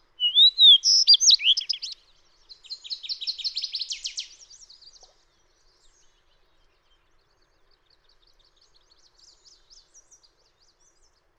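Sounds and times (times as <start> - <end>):
fox sparrow clear slurred whistles: 0.2 - 2.0, 2.6 - 5.1.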